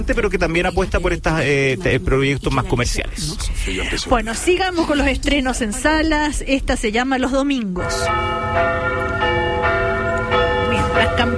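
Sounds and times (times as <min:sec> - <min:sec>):
speech: 0:00.0 - 0:09.6
church bells ringing, calling to mass: 0:07.8 - 0:11.3.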